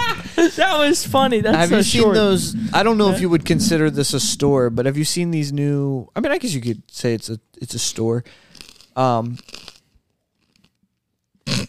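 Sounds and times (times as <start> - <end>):
speech: 0.4 - 9.7
man chewing dry gluten-free snack loudly: 8.4 - 10.8.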